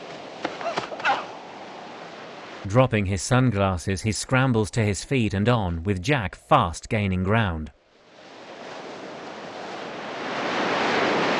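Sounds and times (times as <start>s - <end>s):
ocean waves breaking on an empty beach: 0.0s - 2.7s, 7.9s - 11.3s
speech: 2.6s - 7.8s.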